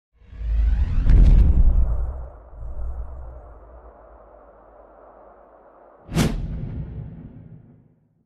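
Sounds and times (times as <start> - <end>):
energy boom: 0.2 - 8.0.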